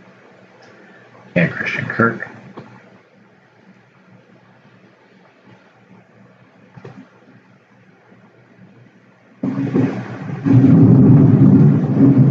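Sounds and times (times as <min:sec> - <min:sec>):
speech: 0:01.6 - 0:02.3
deep rolling thunder: 0:09.4 - 0:12.3.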